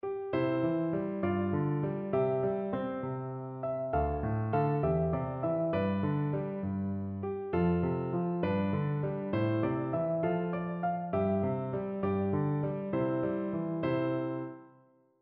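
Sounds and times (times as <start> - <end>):
piano piece: 0.0 - 15.2.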